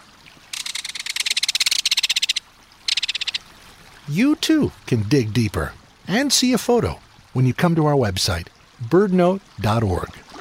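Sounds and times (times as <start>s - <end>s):
belted kingfisher rapid-fire rattle call: 0.5s - 3.4s
speech: 4.1s - 10.2s.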